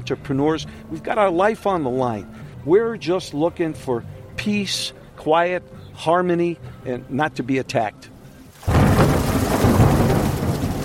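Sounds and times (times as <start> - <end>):
speech: 0.1 - 8.1
heavy pouring rain in a Florida storm over a tourist resort area: 8.5 - 10.8
thunder rumbling in a Florida storm: 8.6 - 10.8.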